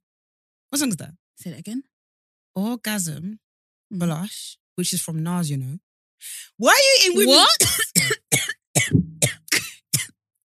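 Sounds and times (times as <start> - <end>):
speech: 0.7 - 1.9, 2.6 - 9.4
harsh fit of coughing: 7.2 - 10.4.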